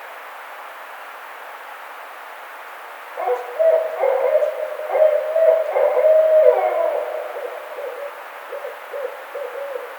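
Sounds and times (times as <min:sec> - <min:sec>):
Barred owl hooting low wavering hoots: 0:03.2 - 0:09.9.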